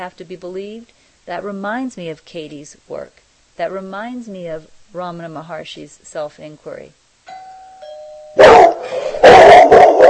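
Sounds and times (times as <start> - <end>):
speech: 0.0 - 7.0
doorbell chime ringing ding-dong: 7.3 - 8.5
dog barking: 8.4 - 10.0.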